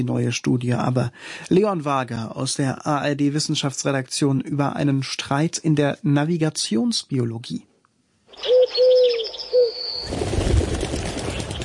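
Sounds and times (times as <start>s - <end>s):
speech: 0.0s - 7.7s
pigeons cooing: 8.4s - 9.8s
rustling flapping noise: 10.0s - 11.6s.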